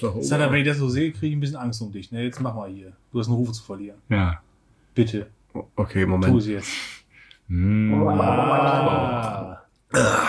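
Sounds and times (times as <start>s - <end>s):
speech: 0.0s - 10.2s
person gargling a drink: 7.5s - 10.2s.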